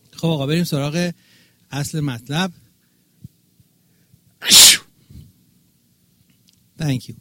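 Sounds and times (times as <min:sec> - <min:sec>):
speech: 0:00.2 - 0:02.6, 0:06.8 - 0:07.1
loud sneeze: 0:04.4 - 0:04.9.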